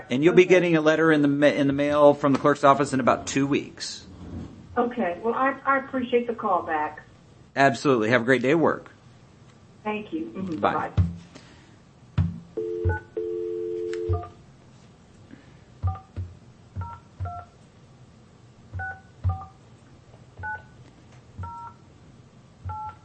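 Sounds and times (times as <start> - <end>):
speech: 0.0 - 4.1, 4.8 - 7.0, 7.6 - 9.0, 9.8 - 11.1
touch-tone telephone dialing beeps: 12.6 - 14.3, 15.8 - 16.1, 20.4 - 20.7, 21.4 - 21.8, 22.7 - 23.0
steady telephone tone: 12.6 - 14.4.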